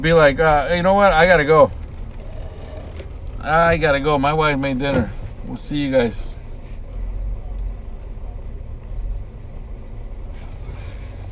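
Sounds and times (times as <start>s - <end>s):
speech: 0.0s - 1.8s, 3.4s - 6.4s
road noise inside the cabin of a moving car: 0.0s - 11.3s.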